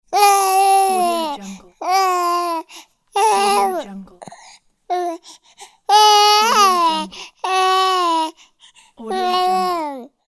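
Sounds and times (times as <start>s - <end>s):
baby babbling: 0.1s - 3.8s, 4.9s - 5.3s, 5.9s - 8.4s, 9.0s - 10.1s.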